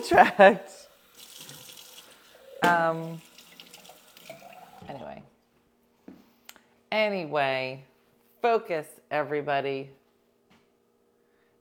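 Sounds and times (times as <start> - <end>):
speech: 0.0 - 0.8, 2.6 - 3.3, 6.9 - 10.0
water from a tap running into a sink: 0.8 - 5.2.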